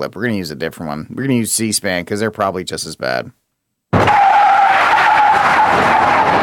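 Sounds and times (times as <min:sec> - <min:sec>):
speech: 0:00.0 - 0:03.4
tires squealing as an electric Hummer peels out: 0:04.0 - 0:06.4.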